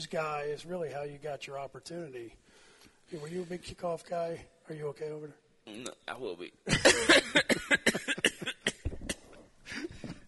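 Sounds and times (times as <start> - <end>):
speech: 0.0 - 2.5, 3.1 - 8.2
person having a harsh coughing fit: 6.7 - 10.0.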